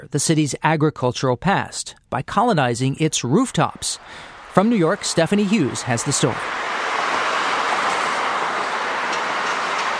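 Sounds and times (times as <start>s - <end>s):
speech: 0.0s - 6.7s
elevated subway train rumbling: 3.9s - 9.9s.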